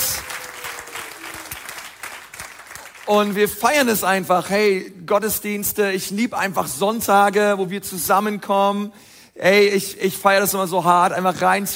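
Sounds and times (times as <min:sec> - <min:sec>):
church congregation applauding at a Sunday service: 0:00.0 - 0:03.9
speech: 0:03.1 - 0:11.7.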